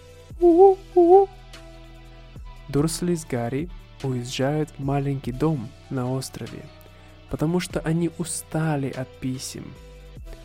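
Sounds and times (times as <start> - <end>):
owl hooting: 0.4 - 1.4
speech: 0.4 - 1.4, 2.8 - 10.4.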